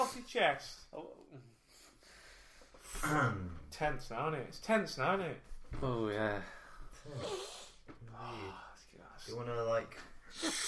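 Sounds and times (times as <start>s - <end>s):
speech: 0.0s - 1.6s, 3.0s - 10.6s
loud nasal sniffing: 7.1s - 7.8s, 10.3s - 10.6s.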